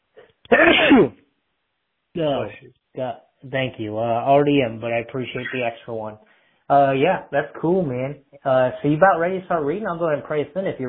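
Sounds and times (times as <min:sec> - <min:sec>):
single loud sneeze caused by allergies: 0:00.5 - 0:01.2
speech: 0:00.5 - 0:01.2, 0:02.1 - 0:10.8
brief voiced sound from someone: 0:05.3 - 0:05.8.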